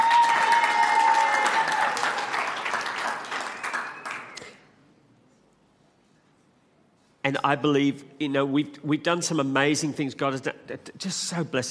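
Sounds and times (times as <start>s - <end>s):
large crowd applauding: 0.0s - 4.6s
speech: 7.3s - 11.6s.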